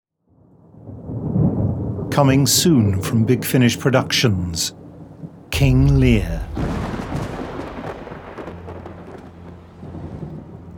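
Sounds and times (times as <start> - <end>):
speech: 2.1 - 4.8, 5.6 - 6.9
deep rolling thunder of a storm: 5.8 - 8.9.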